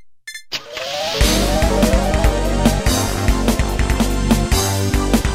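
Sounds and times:
preset pop accompaniment style: 1.2s - 5.2s.

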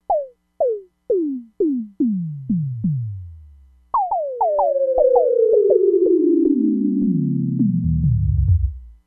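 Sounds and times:
electronic drum synthesizer: 0.0s - 9.0s.

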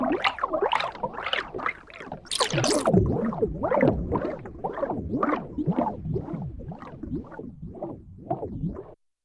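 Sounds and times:
liquid pouring: 0.2s - 8.9s.

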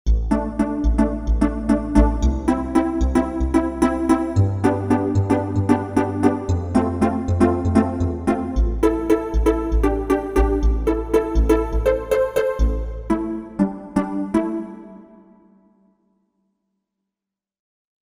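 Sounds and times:
Roland JV-880 synthesizer: 0.1s - 16.0s.

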